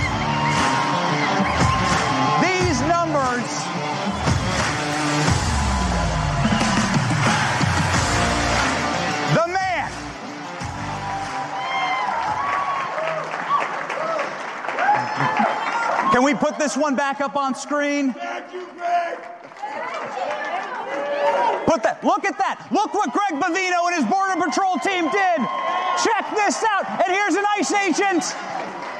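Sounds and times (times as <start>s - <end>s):
scattered cheers and whoops: 0.0s - 9.9s, 10.6s - 17.0s, 18.9s - 21.8s, 22.7s - 28.9s
large crowd applauding: 0.0s - 28.9s
speech: 16.7s - 18.6s, 21.8s - 28.6s.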